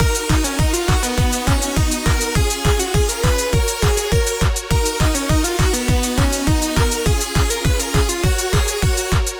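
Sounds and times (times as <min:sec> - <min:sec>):
hi-hat: 0:00.0 - 0:09.3
lead kick drum: 0:00.0 - 0:09.3
supersaw synth: 0:00.0 - 0:09.3.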